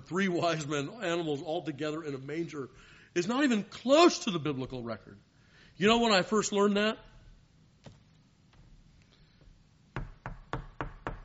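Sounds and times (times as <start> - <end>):
speech: 0.1 - 7.1
knocking on a door: 10.0 - 11.2.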